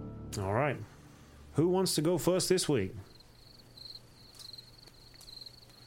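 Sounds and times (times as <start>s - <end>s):
speech: 0.4s - 1.0s, 1.6s - 3.1s
cricket chirping: 3.0s - 5.8s.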